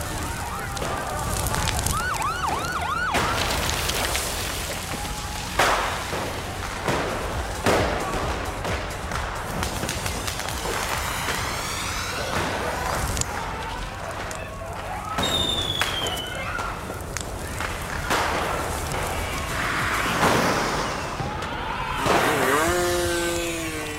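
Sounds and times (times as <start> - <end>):
dense busy street din: 0.0 - 23.9
scattered firecrackers popping and banging: 0.0 - 23.9
whistling rising tones: 15.1 - 16.6.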